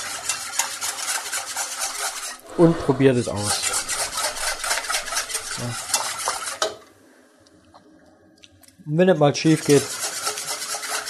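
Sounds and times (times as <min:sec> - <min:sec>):
many-wired whisk stirring a flour mixture in a bowl: 0:00.0 - 0:06.8, 0:09.4 - 0:11.0
speech: 0:02.6 - 0:03.6, 0:05.6 - 0:05.8, 0:08.9 - 0:10.0.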